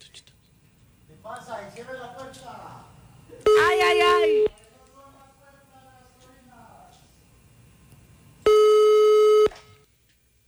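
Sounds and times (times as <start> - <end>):
people talking quietly: 0.0 - 8.3
electronic telephone call tones: 3.5 - 4.5, 8.5 - 9.6.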